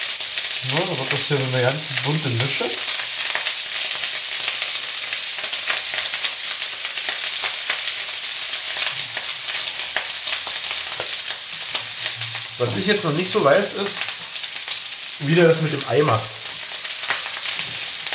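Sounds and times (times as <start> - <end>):
vegetables frying in a hot pan: 0.0 - 18.1
speech: 0.6 - 3.0, 12.6 - 14.1, 15.2 - 16.4.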